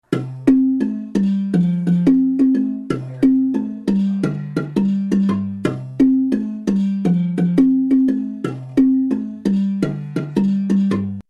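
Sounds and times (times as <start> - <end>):
baritone marimba: 0.1 - 11.2.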